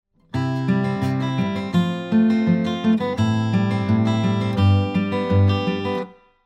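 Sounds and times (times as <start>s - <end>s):
guitar played with three fingers: 0.2s - 6.4s.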